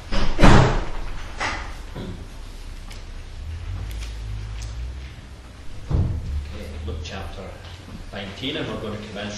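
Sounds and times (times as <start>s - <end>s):
heavy back door pushed shut: 0.1s - 2.1s, 5.6s - 6.6s
low rumble: 2.5s - 8.1s
speech: 8.4s - 9.3s.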